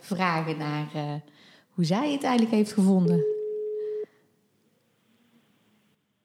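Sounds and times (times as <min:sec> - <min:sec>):
speech: 0:00.1 - 0:03.4
telephone ringing tone on outgoing call: 0:03.1 - 0:04.1.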